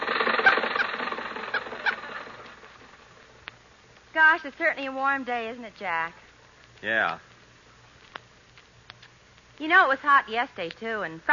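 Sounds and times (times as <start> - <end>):
car engine running while driving: 0.0 - 3.3
speech: 4.2 - 6.2, 6.8 - 7.3, 9.6 - 11.3.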